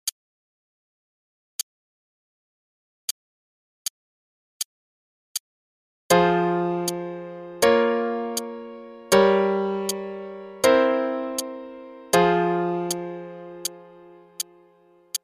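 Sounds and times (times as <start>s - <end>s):
F minor chord progression: 6.1s - 15.0s.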